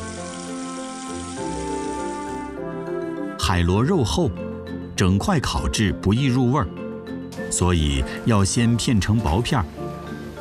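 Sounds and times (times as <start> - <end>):
running tap water rinsing sea snail meat: 0.0 - 3.1, 7.3 - 10.4
speech: 3.5 - 6.8, 7.5 - 9.8.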